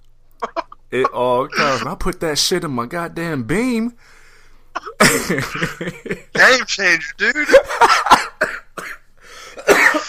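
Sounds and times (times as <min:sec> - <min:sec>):
person coughing: 0:00.4 - 0:02.0, 0:04.8 - 0:06.6, 0:07.5 - 0:10.0
speech: 0:00.9 - 0:04.2, 0:04.8 - 0:09.0.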